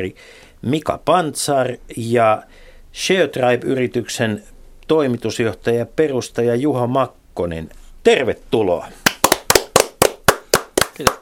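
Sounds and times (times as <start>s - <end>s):
speech: 0.0s - 9.0s, 11.0s - 11.2s
small group clapping in a studio: 9.0s - 11.2s.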